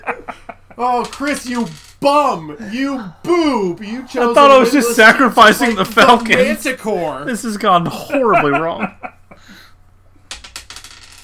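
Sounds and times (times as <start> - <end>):
laughter: 0.0 - 1.6, 2.2 - 9.6
speech: 0.8 - 9.0
dice tumbling and bouncing across a tabletop: 10.3 - 11.2.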